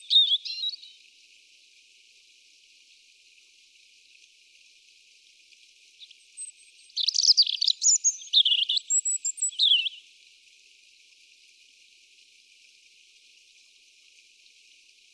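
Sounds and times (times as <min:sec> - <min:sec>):
Erithacus rubecula European robin singing: 0:00.0 - 0:01.0, 0:06.0 - 0:10.1.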